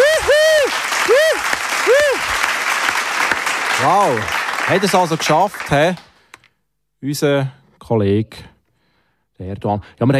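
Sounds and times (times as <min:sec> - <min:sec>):
rising-and-falling whistled whoops: 0:00.0 - 0:02.5
crowd applause: 0:00.0 - 0:06.4
speech: 0:03.8 - 0:06.1, 0:07.0 - 0:08.5, 0:09.4 - 0:10.1.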